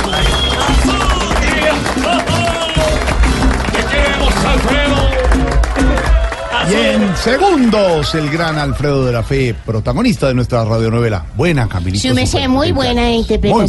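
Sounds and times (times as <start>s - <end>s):
crowd applauding a violinist: 0.0s - 9.5s
voices cheering and calling out: 0.0s - 9.5s
speech: 6.7s - 13.6s.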